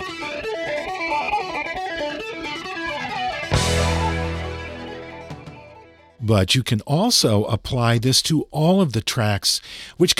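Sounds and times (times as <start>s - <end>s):
electric guitar chords through a flanger: 0.0s - 6.2s
speech: 6.3s - 10.1s.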